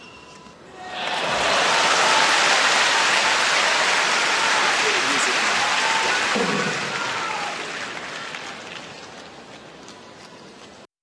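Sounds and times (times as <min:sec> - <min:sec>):
tennis crowd cheering a point: 0:00.7 - 0:09.5.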